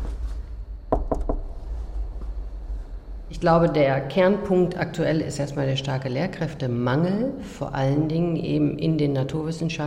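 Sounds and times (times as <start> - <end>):
steady low hum: 0.0 - 9.8
knocking on the middle door: 0.9 - 1.6
speech: 3.3 - 9.8.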